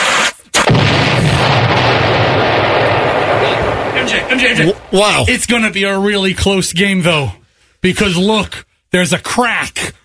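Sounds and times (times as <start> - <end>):
Kansas City Chiefs-themed egg exploding: 0.0 - 5.5
speech: 4.2 - 10.0.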